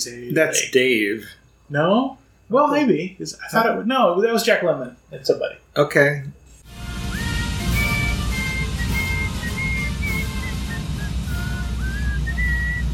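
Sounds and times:
speech: 0.0 - 6.4
steady low rumbling background: 6.7 - 12.9
person whistling a wandering melody: 7.0 - 12.9.

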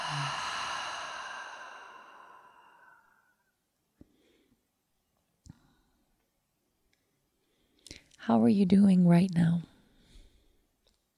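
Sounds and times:
exhaling through an open mouth: 0.0 - 3.2
speech: 8.2 - 9.7.

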